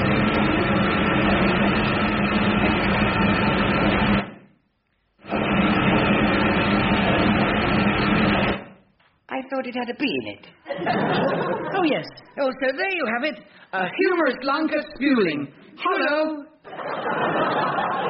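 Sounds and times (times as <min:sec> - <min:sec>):
tumble dryer running: 0:00.0 - 0:04.5, 0:05.2 - 0:08.8
speech: 0:09.6 - 0:18.0
laughter: 0:10.7 - 0:12.4, 0:16.6 - 0:18.0.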